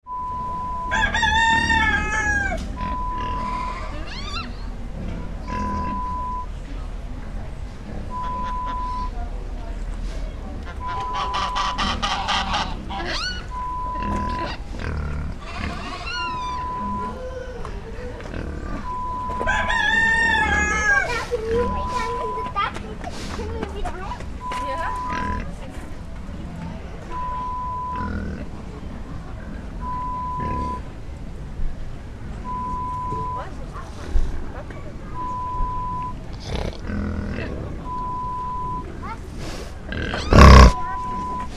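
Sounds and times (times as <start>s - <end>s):
farm animal sounds: 0.1s - 6.4s, 7.4s - 9.3s, 10.0s - 30.9s, 32.4s - 41.5s.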